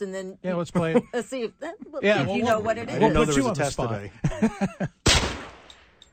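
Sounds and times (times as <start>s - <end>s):
speech: 0.0s - 5.2s
laughter: 0.7s - 1.4s, 2.1s - 5.0s
9 millimeter gunshot: 5.0s - 5.9s.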